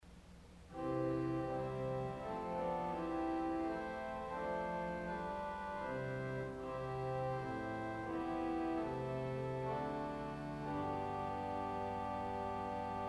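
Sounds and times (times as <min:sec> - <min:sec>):
organ playing salicional stop: 0:00.7 - 0:13.0.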